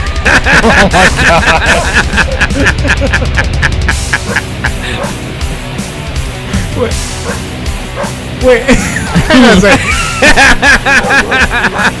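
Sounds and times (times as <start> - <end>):
laughter: 0.0 - 5.4, 8.5 - 11.9
steady backing music of a loud song: 0.0 - 11.9
speech: 0.2 - 3.7, 4.3 - 5.5, 6.8 - 11.9
dog barking as lead vocal of a loud song: 4.2 - 5.2, 7.2 - 8.2, 10.9 - 11.8.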